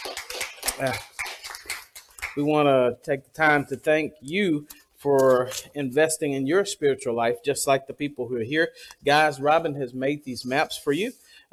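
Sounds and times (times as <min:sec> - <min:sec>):
audience clapping: 0:00.0 - 0:02.6
speech: 0:00.8 - 0:01.1, 0:02.4 - 0:11.5.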